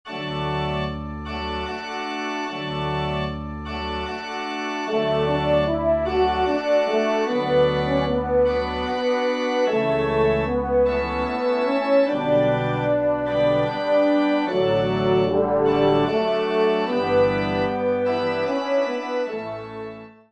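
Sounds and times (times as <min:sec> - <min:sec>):
trumpet and organ playing a romance: 0:00.1 - 0:20.3.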